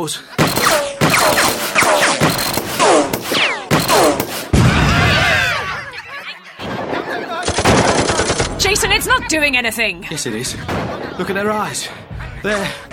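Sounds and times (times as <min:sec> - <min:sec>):
speech: 0:00.0 - 0:02.0, 0:08.8 - 0:12.9
gunfire bursts: 0:00.4 - 0:04.6, 0:07.4 - 0:09.0
laughter: 0:04.7 - 0:12.9.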